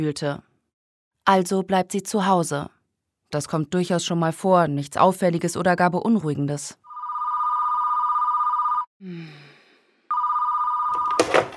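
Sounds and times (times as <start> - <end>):
speech: 0.0 - 0.5, 1.3 - 6.8, 9.0 - 9.4
old-fashioned telephone bell ringing: 6.9 - 8.9, 10.1 - 11.3
telephone receiver clatter: 11.0 - 11.5.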